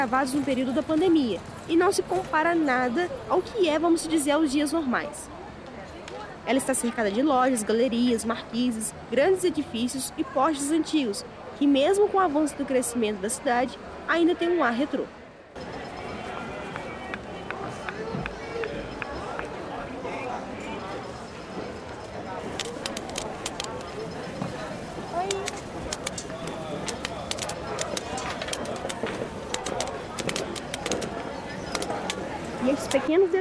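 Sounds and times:
speech: 0:00.0 - 0:05.4, 0:06.5 - 0:15.2
overlapping chatter of people on a busy pedestrian shopping street: 0:00.0 - 0:33.3
sharp clicks and knocks: 0:25.2 - 0:32.2.

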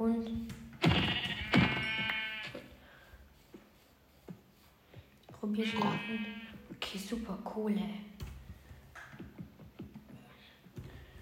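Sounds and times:
speech: 0:00.0 - 0:00.6, 0:05.6 - 0:08.1
sheep bleating in a modded video game: 0:00.8 - 0:02.7, 0:05.6 - 0:06.7.

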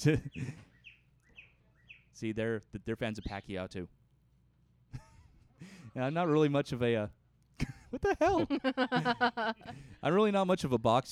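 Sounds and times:
speech: 0:00.0 - 0:00.7, 0:02.2 - 0:04.0, 0:04.9 - 0:11.1
birds squawking: 0:00.2 - 0:02.2
laughter: 0:07.6 - 0:10.0.

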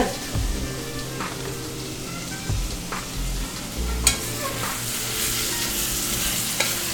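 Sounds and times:
meat sizzling in a pan of sofrito in annatto-tinted oil: 0:00.0 - 0:06.9
spoon stirring and scraping through the pan: 0:03.4 - 0:06.9.

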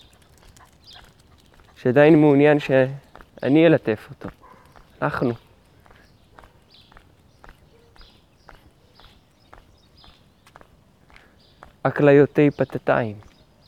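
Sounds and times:
speech: 0:01.8 - 0:04.4, 0:05.0 - 0:05.4, 0:11.8 - 0:13.3
footsteps crunching at walking pace: 0:01.8 - 0:12.0.

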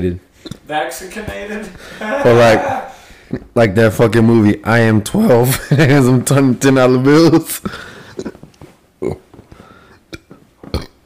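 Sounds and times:
speech: 0:00.0 - 0:07.9, 0:09.0 - 0:09.2
laughter: 0:01.6 - 0:03.0, 0:05.4 - 0:06.3
throaty burps: 0:08.0 - 0:08.4, 0:09.0 - 0:09.4, 0:10.0 - 0:11.0.

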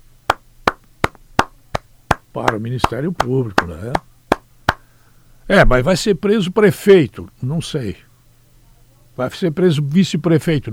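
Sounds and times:
faint low hum: 0:00.0 - 0:10.7
hand claps from a single person: 0:00.3 - 0:04.9
speech: 0:02.3 - 0:04.1, 0:05.5 - 0:08.1, 0:09.2 - 0:10.7.

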